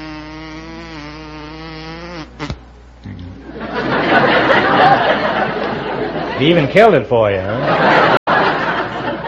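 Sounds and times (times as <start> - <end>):
man's voice imitating a buzzing bumblebee: 0.0 - 3.4
crowd laughter and chatter: 3.4 - 6.8, 7.4 - 9.2
speech: 6.4 - 7.9.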